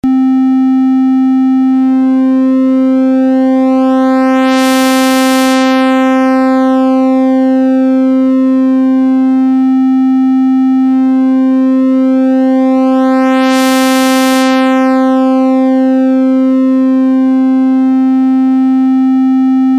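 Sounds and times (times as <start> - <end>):
V-Synth triangle wave synthesizer: 0.0 - 19.6.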